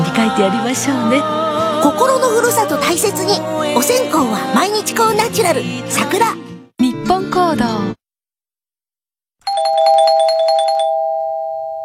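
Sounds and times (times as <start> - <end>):
speech: 0.2 - 6.5, 7.3 - 8.0
electronic bell chime marking the quiz entry deadline: 9.5 - 11.8.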